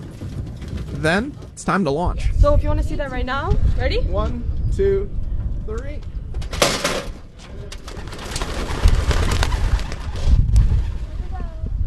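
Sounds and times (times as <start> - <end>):
many pigeons' wings beating as they are released from boxes on a pickup truck: 0.0 - 1.6, 6.5 - 11.6
low thumps and rustling: 0.0 - 11.8
speech: 1.0 - 6.1.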